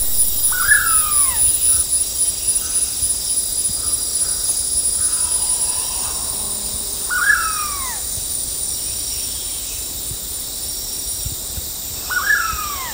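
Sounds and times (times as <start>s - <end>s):
shrill insect chorus: 0.0s - 12.9s
blue-headed pitta calling at Danum: 0.1s - 2.8s, 3.8s - 8.3s, 12.0s - 12.9s.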